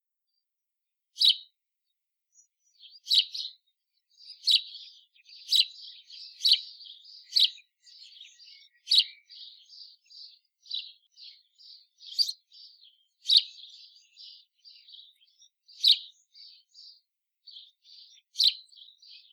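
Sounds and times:
house sparrow (Passer domesticus) chirping: 0:01.2 - 0:01.5, 0:02.3 - 0:19.3
house sparrow soft twittering: 0:04.2 - 0:17.0.

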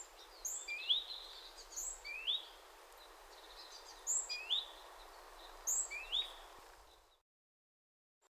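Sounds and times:
great tit Parus major whistled calls: 0:00.0 - 0:07.0
low hiss: 0:00.0 - 0:07.0.

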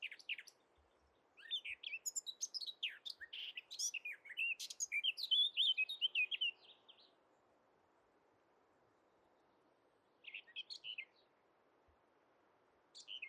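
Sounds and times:
Eurasian blackcap singing, Sylvia atricapilla: 0:00.0 - 0:00.6, 0:01.4 - 0:07.1, 0:13.0 - 0:13.2.

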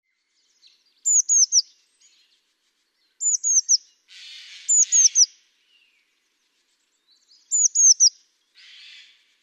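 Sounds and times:
Eurasian blue tit Cyanistes caeruleus calling: 0:01.0 - 0:01.7, 0:03.2 - 0:05.4, 0:07.4 - 0:09.2.

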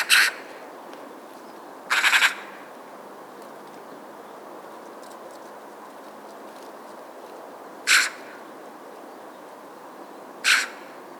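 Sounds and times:
Eurasian magpie Pica pica calling with harsh chak and rattling chatter: 0:00.0 - 0:00.5, 0:01.9 - 0:02.5, 0:07.8 - 0:08.4, 0:10.4 - 0:11.0.

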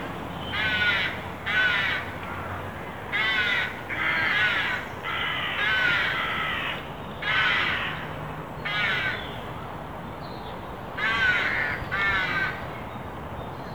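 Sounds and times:
carrion crow Corvus corone cawing: 0:00.4 - 0:08.0, 0:08.7 - 0:09.2, 0:11.0 - 0:12.6.

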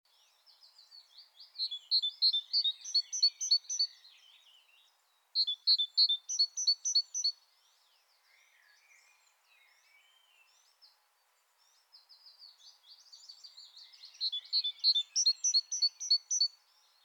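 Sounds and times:
faint bird chirps: 0:00.1 - 0:17.0
great tit singing: 0:00.5 - 0:04.4, 0:05.4 - 0:07.5, 0:12.5 - 0:17.0.

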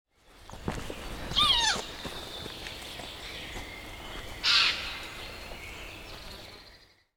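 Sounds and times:
Eurasian jay Garrulus glandarius giving harsh rasping screeches: 0:01.3 - 0:01.8.

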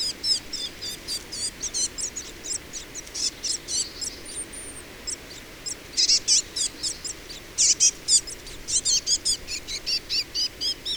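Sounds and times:
Cyanistes caeruleus calling: 0:00.0 - 0:10.9.

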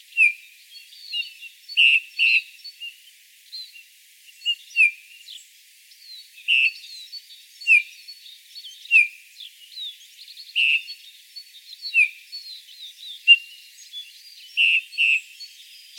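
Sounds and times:
background twittering of other songbirds: 0:00.0 - 0:15.9
Eurasian bullfinch Pyrrhula pyrrhula uttering soft falling piping calls: 0:01.1 - 0:02.9, 0:06.4 - 0:06.8, 0:10.6 - 0:11.0, 0:14.6 - 0:15.3.

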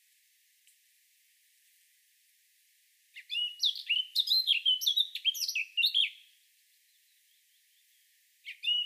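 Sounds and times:
Eurasian blackcap Sylvia atricapilla singing a tumbling warble: 0:03.2 - 0:06.3, 0:06.9 - 0:08.8.

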